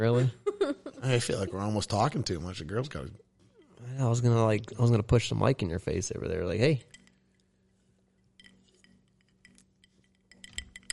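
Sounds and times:
speech: 0.0s - 7.0s
low steady hum: 0.0s - 10.9s
baseball-sized ice cube clinking against a cocktail glass: 8.4s - 10.9s.

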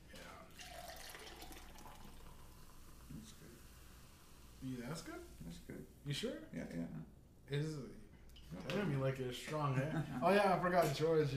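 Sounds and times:
liquid being poured into a glass: 0.1s - 4.6s
speech: 4.6s - 11.3s.

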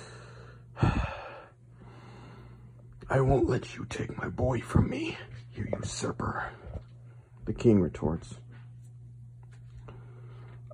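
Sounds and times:
person wheezing and gasping for breath: 0.0s - 2.6s
speech: 3.1s - 6.8s, 7.4s - 8.4s.

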